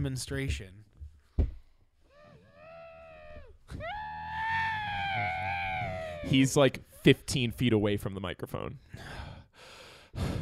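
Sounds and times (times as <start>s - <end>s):
speech: 0.0s - 0.9s, 6.2s - 10.3s
muffled screaming into a pillow: 2.1s - 7.0s.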